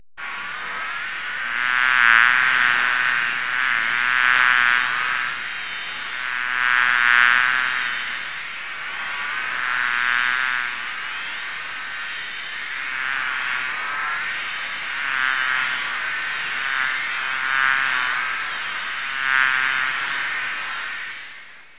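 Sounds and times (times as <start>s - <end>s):
bee swarm: 0.2s - 21.7s.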